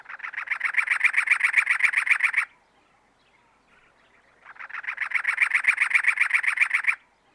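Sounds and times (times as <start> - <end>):
cactus wren Campylorhynchus brunea capillus chattering in Arizona: 0.0 - 2.5, 4.4 - 7.0.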